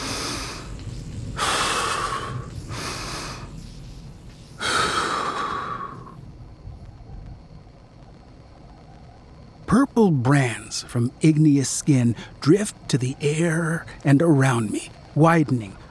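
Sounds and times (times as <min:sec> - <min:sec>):
slow deep breathing: 0:00.0 - 0:03.8, 0:04.6 - 0:06.2
speech: 0:10.0 - 0:15.8.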